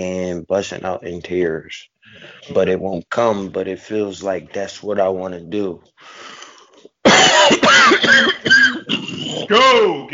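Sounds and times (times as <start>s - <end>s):
speech: 0.0s - 6.3s, 9.3s - 10.1s
person coughing up phlegm: 7.0s - 9.6s
person clearing throat: 7.1s - 9.6s.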